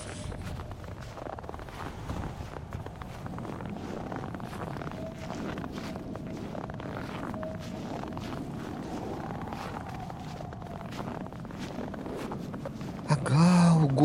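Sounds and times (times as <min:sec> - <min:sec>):
thin howling tone: 0:00.0 - 0:13.3
blustery wind: 0:00.0 - 0:14.0
soft crunching footsteps: 0:00.0 - 0:14.0.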